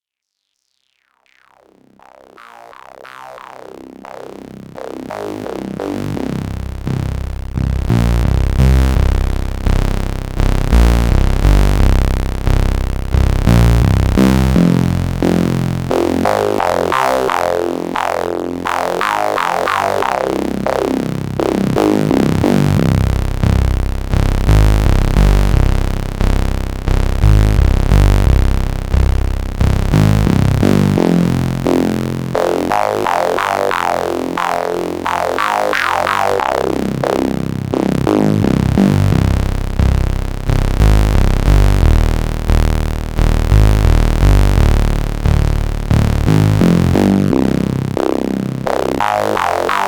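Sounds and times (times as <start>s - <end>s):
analog synthesizer bass through high-pass filter: 1.6s - 49.8s.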